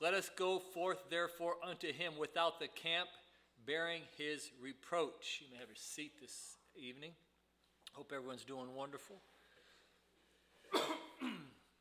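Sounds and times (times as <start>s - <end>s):
speech: 0.0s - 7.2s, 7.9s - 9.3s
person clearing throat: 10.7s - 11.7s
person coughing: 10.7s - 11.7s.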